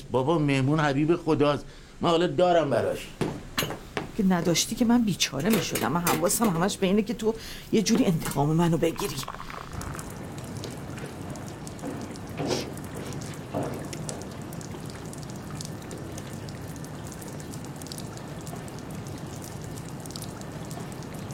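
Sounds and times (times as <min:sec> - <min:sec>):
speech: 0:00.1 - 0:03.3, 0:04.2 - 0:09.6
water running from an open water valve: 0:04.4 - 0:21.3.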